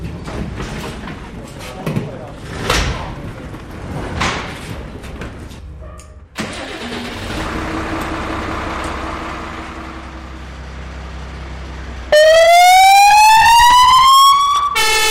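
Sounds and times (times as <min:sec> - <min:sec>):
voices: 0:00.7 - 0:05.6
fire truck engine cranking and starting: 0:05.6 - 0:15.0.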